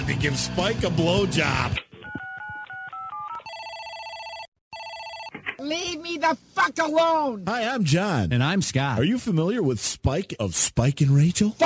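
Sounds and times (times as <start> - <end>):
speech: 0.1 - 1.9, 5.6 - 11.6
touch-tone dialing beeps: 2.0 - 5.4
loud steady electronic telephone ring: 2.1 - 5.4.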